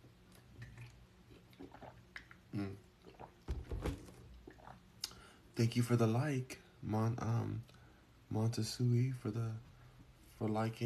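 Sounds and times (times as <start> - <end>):
person sipping water: 0.3 - 5.3
gulping swallows of water: 0.6 - 3.5, 4.3 - 5.2
speech: 2.5 - 2.9, 5.6 - 7.7, 8.3 - 9.7, 10.4 - 10.8.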